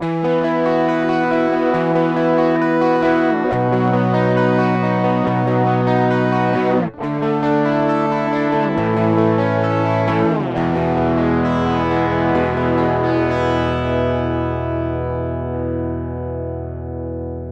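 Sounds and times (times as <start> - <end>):
overdriven guitar on bridge pickup: 0.0 - 17.5.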